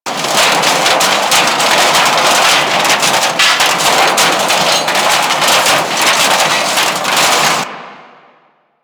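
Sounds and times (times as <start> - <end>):
trash and debris ambience on a ship: 0.1 - 8.0.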